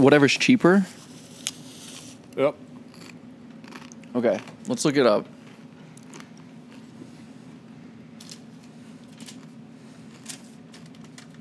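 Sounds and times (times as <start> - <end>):
speech: 0.0 - 1.0, 2.4 - 2.7, 4.2 - 5.4
dry biscuits crunching while bitten and chewed: 1.0 - 4.8, 5.4 - 7.0, 8.2 - 11.4.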